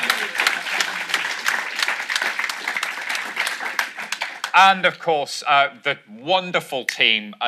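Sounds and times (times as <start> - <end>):
live event audience applauding: 0.0 - 5.0
speech: 4.6 - 7.4.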